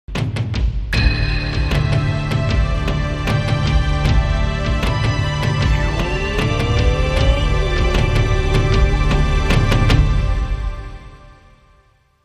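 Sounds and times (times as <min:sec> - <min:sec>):
Japanese drums: 0:00.1 - 0:11.4.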